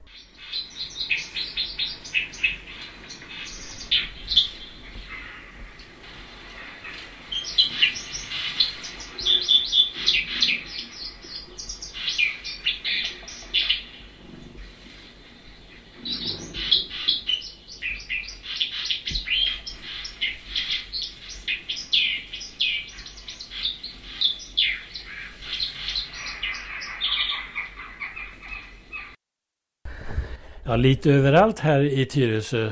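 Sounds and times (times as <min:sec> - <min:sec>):
white-throated dipper singing: 0:00.0 - 0:06.0, 0:06.6 - 0:14.2, 0:15.7 - 0:29.2
speech: 0:30.7 - 0:32.7.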